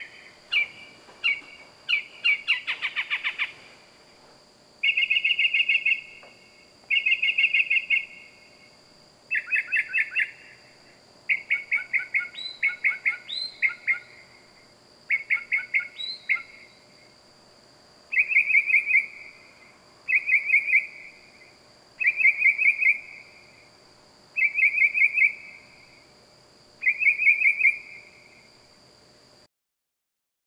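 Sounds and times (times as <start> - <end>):
loud night bird calling: 0.0 - 3.8, 4.8 - 6.3, 6.9 - 8.4, 9.3 - 10.7, 11.3 - 14.4, 15.1 - 16.8, 18.1 - 19.4, 20.1 - 21.2, 22.0 - 23.4, 24.4 - 25.7, 26.8 - 28.2.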